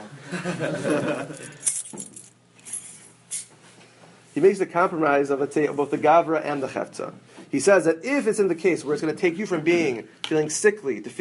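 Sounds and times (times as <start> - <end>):
laughter: 0.0 - 1.6
speech: 0.3 - 2.0, 4.4 - 11.1
keys jangling as they are handed over: 1.2 - 3.5.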